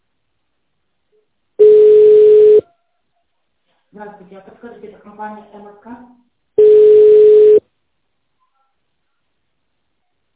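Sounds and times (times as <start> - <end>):
telephone ringback tone on an unanswered call: 1.6 - 2.6, 6.6 - 7.6
speech: 3.9 - 6.3.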